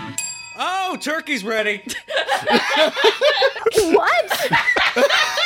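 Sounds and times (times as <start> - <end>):
small bell ringing: 0.2 - 3.3
speech: 1.0 - 5.4
laughter: 1.9 - 5.4.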